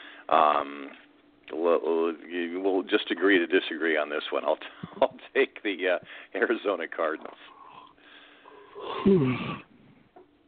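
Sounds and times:
speech: 0.3 - 7.6, 8.8 - 9.7
person yawning into a microphone: 7.6 - 9.7.

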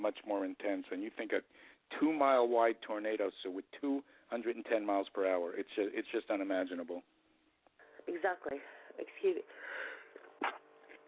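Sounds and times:
speech: 0.0 - 7.2, 8.0 - 10.6
person sneezing: 10.4 - 10.6.

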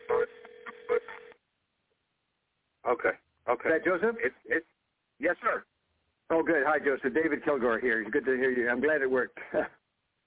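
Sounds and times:
telephone tones as a number is dialed and the call connects: 0.0 - 1.4
speech: 2.9 - 5.7, 6.3 - 9.8.

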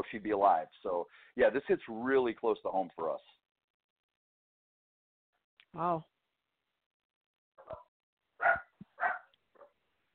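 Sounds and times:
speech: 0.0 - 3.4, 5.7 - 6.1
dog barking: 7.6 - 9.8.

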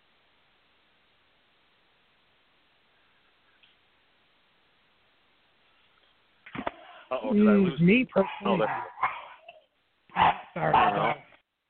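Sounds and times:
speech: 7.1 - 8.9, 10.6 - 11.2
dogs barking: 8.1 - 11.4.

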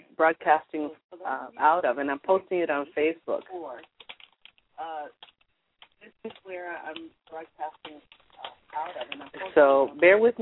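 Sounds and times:
speech: 0.2 - 3.9, 4.8 - 5.3, 6.0 - 10.4
typing on a computer keyboard: 3.8 - 9.5.

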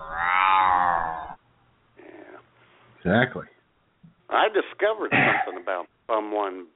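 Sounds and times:
cat meowing: 0.0 - 1.4
speech: 3.0 - 3.5, 4.3 - 6.7.

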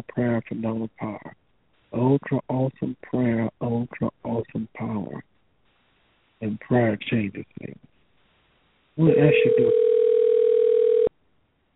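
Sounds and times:
speech: 0.0 - 5.3, 6.4 - 7.9, 9.0 - 9.9
phone ringing with a single steady electronic tone: 9.0 - 11.1.

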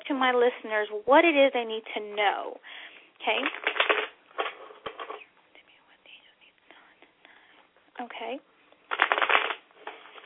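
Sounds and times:
speech: 0.1 - 3.7, 8.0 - 8.5
tarot cards being shuffled: 3.4 - 5.2, 8.9 - 10.2.

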